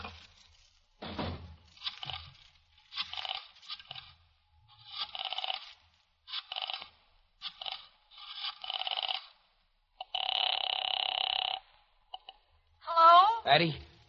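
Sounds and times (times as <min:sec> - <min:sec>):
telephone being dialed with rasping whirs: 0:01.7 - 0:12.4
speech: 0:13.5 - 0:14.0.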